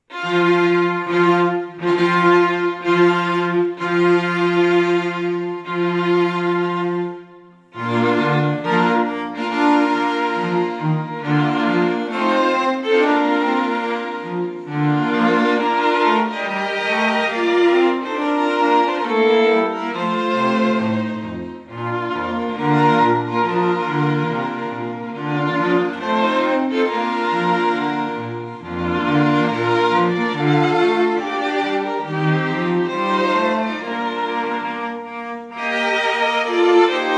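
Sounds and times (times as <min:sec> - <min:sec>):
string quartet playing a wedding march: 0:00.0 - 0:37.1.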